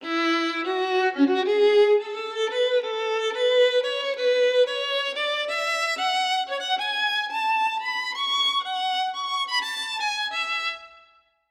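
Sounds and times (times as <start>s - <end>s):
violin vibrato: 0.0s - 11.2s.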